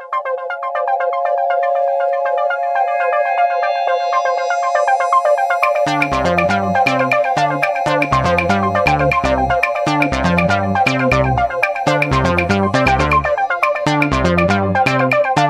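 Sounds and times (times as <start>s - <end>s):
tweet tone: 0.2s - 15.4s.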